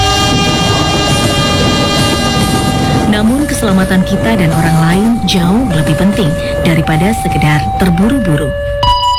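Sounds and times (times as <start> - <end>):
train rumbling past with a heavy roar: 0.0 - 8.5
sustained tonal ringing: 0.0 - 9.1
speech: 3.2 - 8.8.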